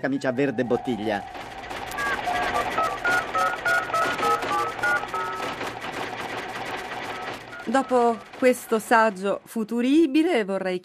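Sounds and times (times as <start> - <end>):
speech: 0.0 - 1.6, 7.7 - 10.8
touch-tone telephone dialing beeps: 0.4 - 5.6, 7.0 - 8.2
dense clattering noise: 0.8 - 10.3.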